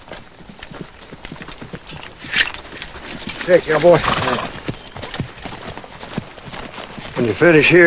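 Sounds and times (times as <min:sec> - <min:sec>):
horse hooves clip-clopping as a rider approaches a fence: 0:00.0 - 0:07.8
speech: 0:03.5 - 0:04.6, 0:07.2 - 0:07.8
horse whinnying: 0:03.7 - 0:04.8.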